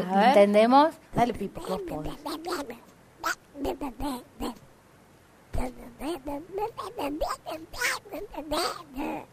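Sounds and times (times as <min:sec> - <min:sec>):
speech: 0:00.0 - 0:04.6, 0:05.6 - 0:09.3
person imitating a duck character quacking out garbled syllables: 0:01.6 - 0:04.6, 0:05.6 - 0:09.3.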